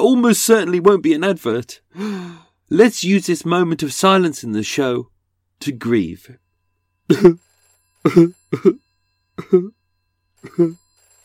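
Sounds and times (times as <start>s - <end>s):
speech: 0.0s - 6.4s, 7.1s - 8.8s, 9.4s - 9.8s, 10.4s - 10.8s
voice imitating a 1980s-style landline telephone ringing: 7.0s - 11.2s.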